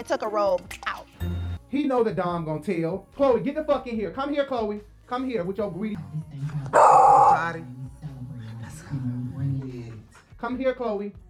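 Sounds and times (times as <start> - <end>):
speech: 0.0 - 6.8, 7.4 - 7.8, 10.4 - 11.2
dog barking and growling: 6.6 - 8.6.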